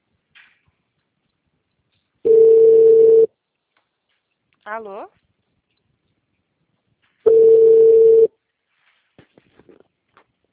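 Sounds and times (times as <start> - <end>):
telephone dial tone after placing a call: 2.3 - 3.3, 7.3 - 8.3
speech: 4.7 - 5.2.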